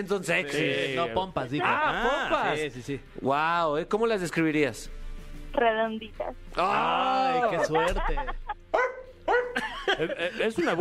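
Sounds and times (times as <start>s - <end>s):
speech: 0.0s - 8.4s, 10.0s - 10.7s
laughter: 6.9s - 8.7s, 9.5s - 10.7s
dog barking in short yelping bursts: 8.7s - 9.6s.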